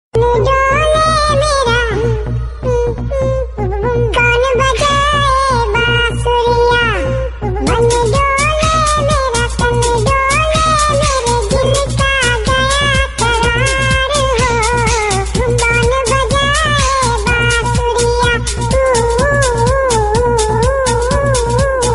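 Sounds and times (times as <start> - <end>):
funny Hindi song: 0.2 - 21.9.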